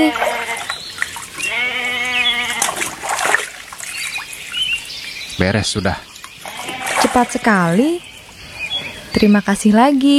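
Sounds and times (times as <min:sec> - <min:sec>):
speech: 0:00.0 - 0:00.3, 0:05.4 - 0:06.1, 0:07.1 - 0:08.1, 0:09.2 - 0:10.1
sheep bleating: 0:00.0 - 0:00.8, 0:01.4 - 0:02.9, 0:06.4 - 0:07.8
water splashing and trickling: 0:00.0 - 0:08.4.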